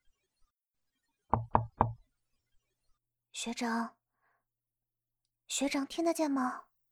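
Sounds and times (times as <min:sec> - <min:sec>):
knocking on a door: 0:01.3 - 0:02.0
speech: 0:03.4 - 0:04.0, 0:05.5 - 0:06.7.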